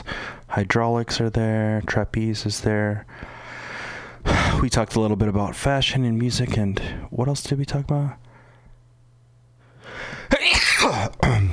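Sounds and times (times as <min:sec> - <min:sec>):
speech: 0:00.6 - 0:03.3, 0:04.6 - 0:08.2
loud sneeze with breathy inhale: 0:10.2 - 0:11.5.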